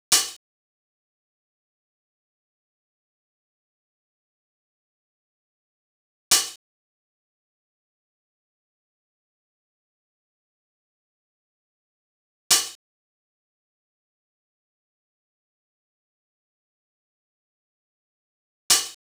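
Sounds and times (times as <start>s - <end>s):
open hi-hats: 0.1s - 0.4s, 6.3s - 6.6s, 12.5s - 12.8s, 18.7s - 19.0s.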